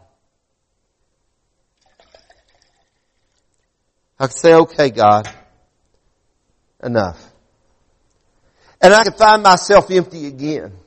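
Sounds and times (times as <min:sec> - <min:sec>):
liquid pouring out of a container: 0:01.8 - 0:03.7
speech: 0:04.2 - 0:05.4, 0:06.8 - 0:07.3, 0:08.8 - 0:10.8.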